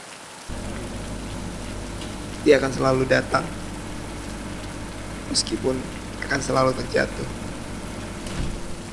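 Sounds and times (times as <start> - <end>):
steady rain falling with a dense hiss of drops: 0.0 - 8.9
speech: 2.4 - 3.6, 5.3 - 7.4.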